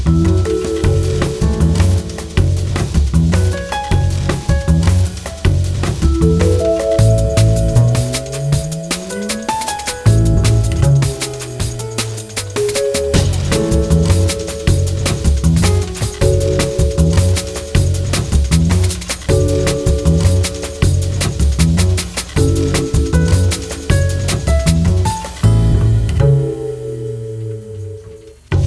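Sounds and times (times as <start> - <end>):
electronic music: 0.1 - 28.5.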